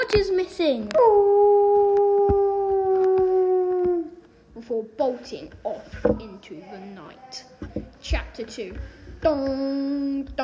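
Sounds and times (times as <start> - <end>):
speech: 0.1 - 1.9, 4.6 - 10.4
animal howling at night: 1.0 - 4.2.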